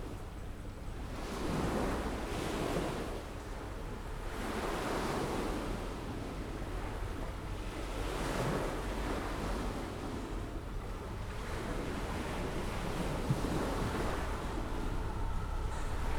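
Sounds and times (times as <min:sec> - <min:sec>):
seaside ambience in Skala Potamia on Thassos: 0:00.1 - 0:16.1
car on the left heard from a terrace: 0:10.9 - 0:16.1.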